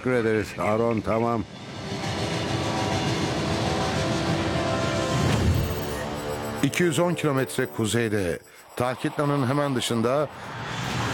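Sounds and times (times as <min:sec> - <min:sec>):
speech: 0:00.0 - 0:02.0, 0:06.6 - 0:10.8
train rumbling with a deep continuous roar approaching over a hill: 0:01.5 - 0:06.4.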